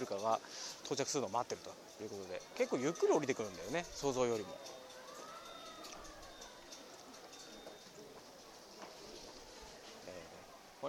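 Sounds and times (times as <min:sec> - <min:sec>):
speech: 0:00.0 - 0:04.8
steady outdoor noise: 0:00.0 - 0:10.8
ambulance siren wailing: 0:04.6 - 0:08.1.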